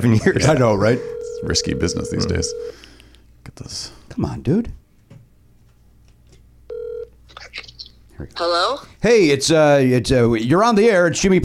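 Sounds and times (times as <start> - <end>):
speech: 0.0 - 2.9, 3.5 - 4.8, 8.2 - 11.4
telephone line electronic ring tone: 0.4 - 2.8, 6.7 - 7.1.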